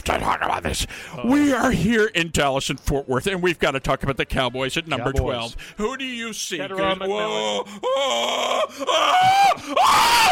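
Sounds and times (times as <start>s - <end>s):
speech: 0.1s - 10.3s
brief breaths: 0.8s - 1.2s, 5.5s - 5.8s, 9.6s - 9.8s
person screaming loudly in excitement: 7.2s - 10.3s.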